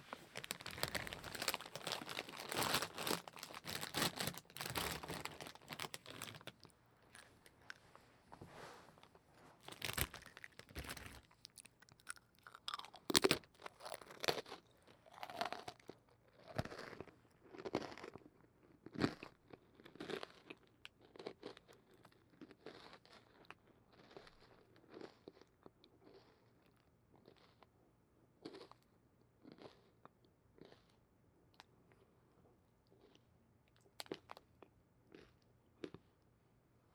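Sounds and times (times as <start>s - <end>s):
crunchy food being bitten and chewed: 0.4s - 8.0s, 9.0s - 27.8s, 28.4s - 36.2s.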